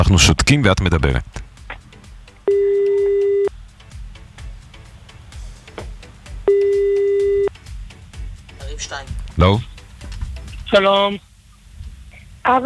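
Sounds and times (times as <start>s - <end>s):
speech: 0.0s - 1.4s, 8.8s - 9.7s, 10.7s - 11.3s, 12.4s - 12.6s
faint noise: 0.0s - 12.6s
telephone ringback tone while a call is placed: 2.5s - 3.5s, 6.5s - 7.5s.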